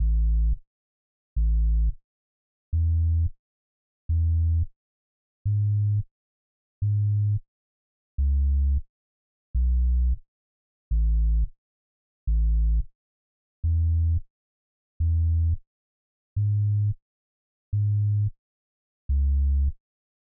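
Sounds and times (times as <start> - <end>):
sub bass in C minor: 0.0 - 0.6, 1.4 - 2.0, 2.7 - 3.3, 4.1 - 4.7, 5.4 - 6.0, 6.8 - 7.4, 8.2 - 8.8, 9.6 - 10.2, 10.9 - 11.5, 12.3 - 12.9, 13.6 - 14.2, 15.0 - 15.6, 16.4 - 17.0, 17.7 - 18.3, 19.1 - 19.8.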